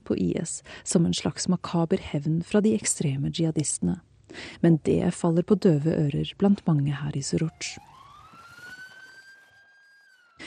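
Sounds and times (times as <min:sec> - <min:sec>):
speech: 0:00.1 - 0:07.9
ambulance siren wailing: 0:07.3 - 0:10.4.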